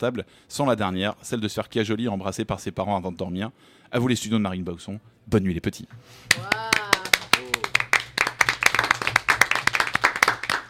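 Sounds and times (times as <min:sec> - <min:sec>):
speech: 0:00.0 - 0:06.9
lively applause from a small group: 0:06.3 - 0:10.6.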